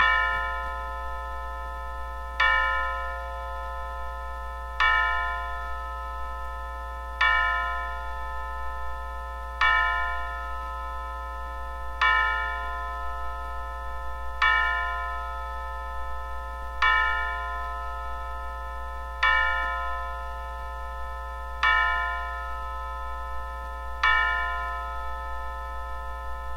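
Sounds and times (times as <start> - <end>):
hourly clock chime: 0.0 - 26.5.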